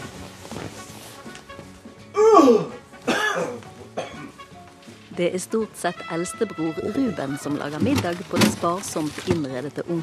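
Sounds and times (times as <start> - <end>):
person coughing loudly: 2.2 - 4.3
speech: 2.4 - 2.8, 5.2 - 10.0.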